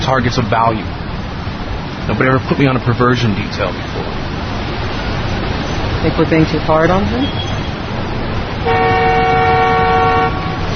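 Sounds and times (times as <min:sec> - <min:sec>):
steady traffic rumble: 0:00.0 - 0:10.7
speech: 0:00.1 - 0:01.0, 0:02.1 - 0:04.1, 0:06.0 - 0:07.5, 0:08.6 - 0:09.1
bus horn honking: 0:08.6 - 0:10.7.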